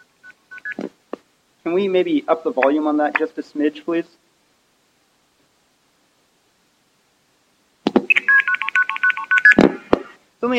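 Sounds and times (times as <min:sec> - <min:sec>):
old long-distance telephone dialing tones: 0:00.0 - 0:00.8, 0:08.1 - 0:09.6
speech: 0:01.6 - 0:04.2.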